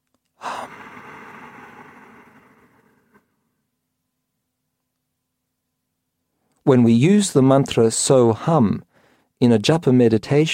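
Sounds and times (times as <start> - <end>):
long airy breath from a breathing demonstration: 0.4 - 3.6, 8.9 - 9.3
speech: 6.7 - 10.5.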